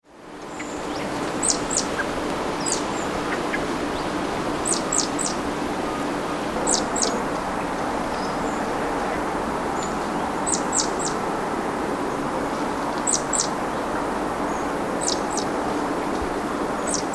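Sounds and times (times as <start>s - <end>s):
low rumbling background noise: 0.1s - 17.1s
great tit Parus major calls: 0.5s - 8.6s, 9.8s - 11.2s, 13.0s - 17.1s.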